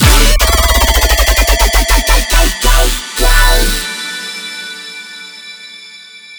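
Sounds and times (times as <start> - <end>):
bass shot in D major at 150 bpm: 0.0 - 3.8.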